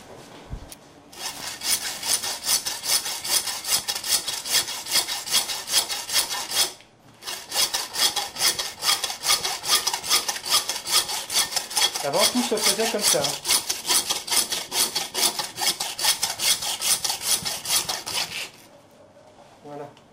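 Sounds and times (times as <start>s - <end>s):
hand saw cutting through wood: 1.1s - 18.6s
speech: 12.1s - 13.5s.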